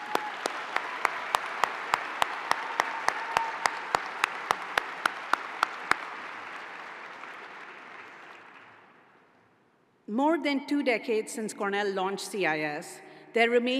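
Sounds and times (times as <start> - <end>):
one pair of hands clapping a sharp steady rhythm: 0.0 - 9.0
sustained applause from a large audience: 0.0 - 9.2
speech: 10.1 - 13.7.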